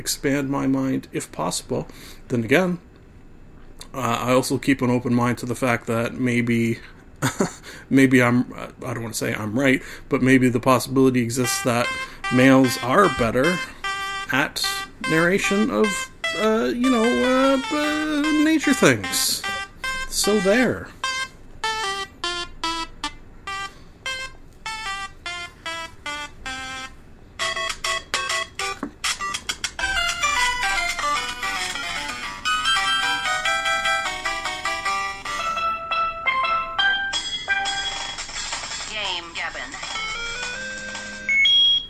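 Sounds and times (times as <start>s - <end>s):
speech: 0.0s - 2.9s, 3.8s - 19.6s, 20.2s - 21.0s
electronic segment timer alarm playing a beeping melody: 11.4s - 38.4s, 39.8s - 41.8s.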